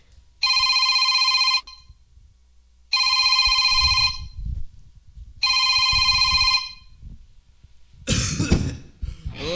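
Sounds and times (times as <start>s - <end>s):
telephone ringing on an outgoing call: 0.4s - 1.9s, 2.9s - 4.4s, 5.4s - 6.9s
sharp cough: 8.1s - 8.9s.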